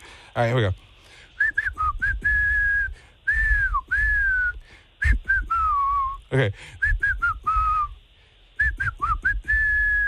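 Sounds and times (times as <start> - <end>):
speech: 0.4 - 0.9, 6.3 - 6.8
person whistling a pop tune: 1.4 - 8.0, 8.6 - 10.0.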